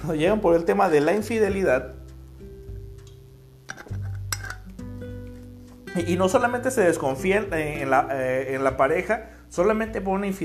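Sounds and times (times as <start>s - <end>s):
speech: 0.0s - 2.0s, 6.0s - 10.4s
glass bottle clinking as it is handled: 3.7s - 4.7s.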